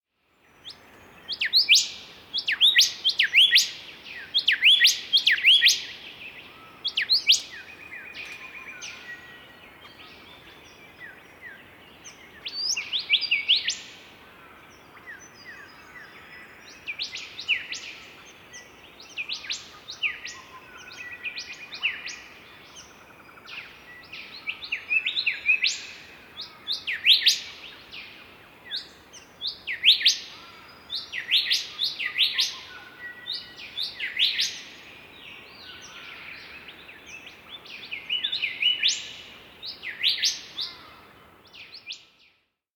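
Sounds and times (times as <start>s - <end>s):
Golden Whistlers singing in duet: 0.2s - 42.6s.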